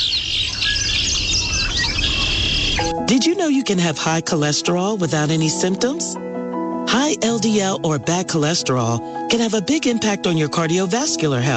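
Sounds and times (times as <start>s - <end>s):
backyard birds in Vermont chirping and warbling: 0.0s - 2.9s
speech: 3.0s - 11.5s.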